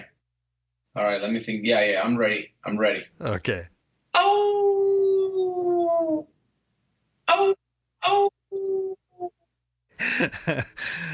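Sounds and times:
speech: 1.0s - 4.5s, 10.2s - 11.1s
person imitating a hound dog or wolf howl: 4.2s - 6.3s, 7.3s - 9.3s.

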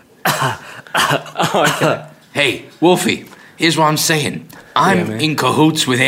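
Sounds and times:
sharp raspy cough: 0.2s - 2.1s
speech: 0.4s - 6.0s.

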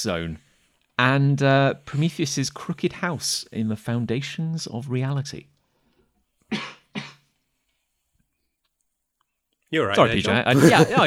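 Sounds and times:
speech: 0.0s - 0.4s, 1.0s - 5.5s, 9.7s - 11.0s
quick breathy coughs: 6.5s - 7.3s
laughter: 10.0s - 11.0s.

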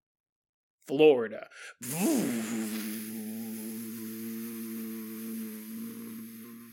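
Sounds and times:
speech: 0.9s - 3.2s
voice imitating a hovercraft engine buzzing: 1.8s - 6.7s.

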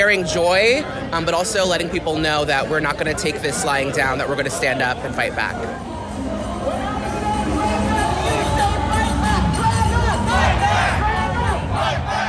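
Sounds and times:
speech: 0.0s - 5.9s
large outdoor crowd chanting at a street march: 5.6s - 12.2s.

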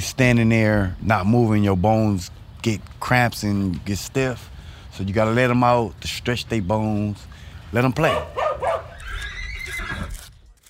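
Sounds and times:
speech: 0.0s - 8.4s
horse on a ranch whinnying: 8.4s - 10.3s.

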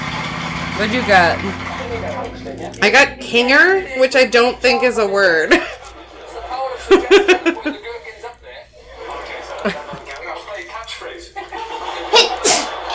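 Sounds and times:
speech: 0.8s - 5.7s, 6.9s - 7.8s
people talking and chuckling: 0.9s - 2.8s, 5.1s - 12.9s
person sneezing: 12.2s - 12.8s.

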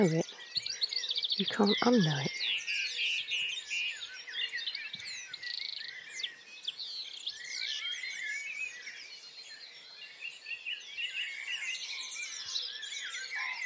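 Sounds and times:
speech: 0.0s - 0.4s, 1.4s - 2.4s
dense chorus of many birds chirping and singing: 0.0s - 13.6s.

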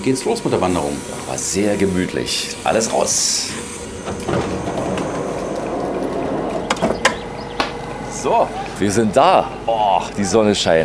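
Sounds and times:
speech: 0.0s - 4.8s, 8.2s - 10.8s
train rolling slowly into a small station: 3.0s - 8.9s.

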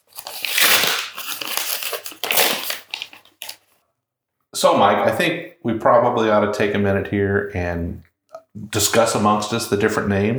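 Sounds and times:
paper crumpling: 0.0s - 3.8s
paper envelopes being torn open: 0.0s - 3.8s
speech: 4.6s - 10.3s.

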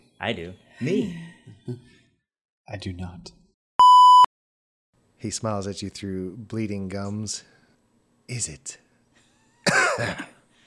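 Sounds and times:
speech: 0.2s - 2.0s, 2.7s - 3.4s, 5.2s - 7.6s, 8.3s - 8.8s, 10.0s - 10.3s
person coughing: 9.7s - 10.4s.

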